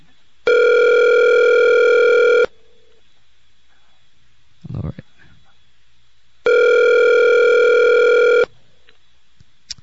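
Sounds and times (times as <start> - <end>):
electronic ringback tone on an outgoing phone call: 0.5 - 2.5, 6.4 - 8.5.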